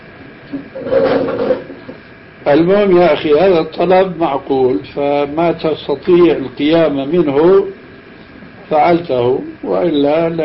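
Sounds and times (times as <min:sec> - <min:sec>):
speech: 0:00.5 - 0:01.5, 0:02.5 - 0:07.8, 0:08.7 - 0:10.4
wooden chair scraping across the floor: 0:00.7 - 0:02.0.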